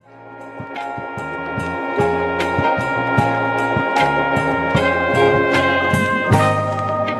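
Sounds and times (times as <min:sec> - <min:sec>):
nostalgic hip hop drum kit: 0:00.5 - 0:07.1.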